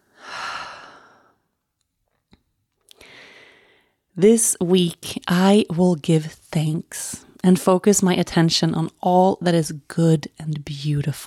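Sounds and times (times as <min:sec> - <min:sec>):
deep breath in and out: 0:00.0 - 0:01.5, 0:03.0 - 0:04.1
speech: 0:04.2 - 0:11.2.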